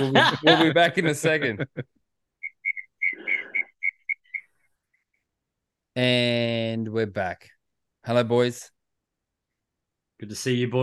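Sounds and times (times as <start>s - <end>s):
laughter: 0.0s - 1.9s
speech: 0.0s - 2.0s, 6.0s - 8.8s, 10.2s - 10.8s
cricket chirping: 2.4s - 5.2s.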